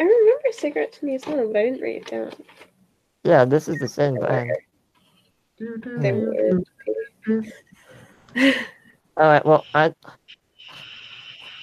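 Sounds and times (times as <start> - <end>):
speech: 0.0 - 4.7, 5.6 - 7.7, 8.4 - 10.2
very heavy breathing: 7.6 - 8.8.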